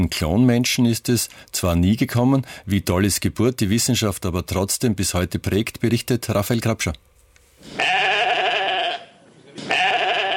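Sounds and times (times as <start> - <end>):
speech: 0.0 - 8.1
sheep bleating: 7.7 - 10.3.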